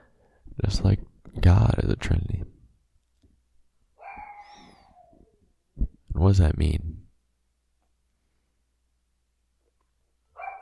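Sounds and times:
speech: 0:00.6 - 0:01.1, 0:01.9 - 0:02.5, 0:06.2 - 0:06.9
dog barking: 0:04.0 - 0:04.6, 0:10.4 - 0:10.6.

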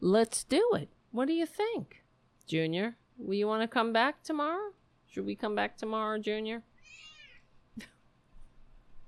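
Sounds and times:
speech: 0:00.0 - 0:07.1
single short cat meow: 0:06.8 - 0:07.5.

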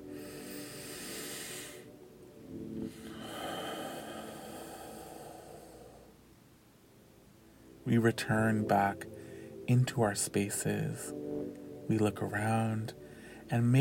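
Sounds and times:
slow deep breath during a guided meditation ceremony: 0:00.0 - 0:01.9, 0:02.8 - 0:06.2, 0:09.1 - 0:09.6, 0:13.0 - 0:13.5
speech: 0:07.9 - 0:11.2, 0:11.9 - 0:13.7.

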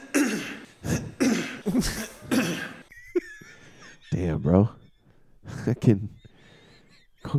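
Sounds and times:
harsh raspy throat-clearing coughs: 0:00.0 - 0:03.0
laughter: 0:00.9 - 0:07.2
speech: 0:01.8 - 0:02.0, 0:04.5 - 0:04.8, 0:05.6 - 0:06.2.

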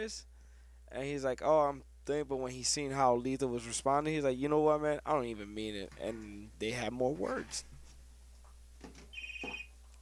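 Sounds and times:
speech: 0:00.0 - 0:00.3, 0:00.9 - 0:07.7
telephone ringing with an incoming call: 0:09.1 - 0:09.8.

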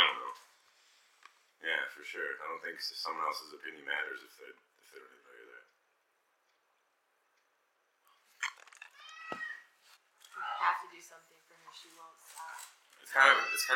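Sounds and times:
speech: 0:02.0 - 0:05.3, 0:13.2 - 0:13.7
cat meowing: 0:08.4 - 0:09.8, 0:13.1 - 0:13.7.

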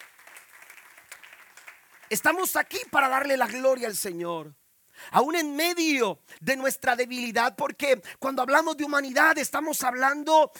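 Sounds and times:
crowd applauding: 0:00.0 - 0:03.6
speech: 0:02.1 - 0:10.5.

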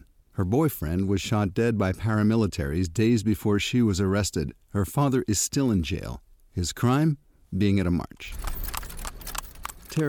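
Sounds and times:
speech: 0:00.4 - 0:08.6
hooves of a horse pulling a cart clip-clopping: 0:08.3 - 0:10.0.

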